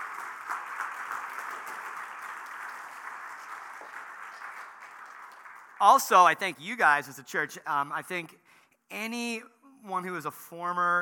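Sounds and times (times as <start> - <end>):
church audience applauding: 0.0 - 6.3
speech: 5.8 - 11.0.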